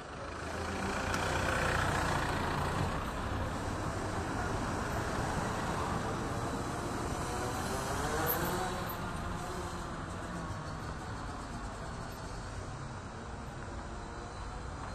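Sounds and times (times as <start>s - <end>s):
cars and heavier vehicles passing along the street beside the sidewalk: 0.0s - 14.9s.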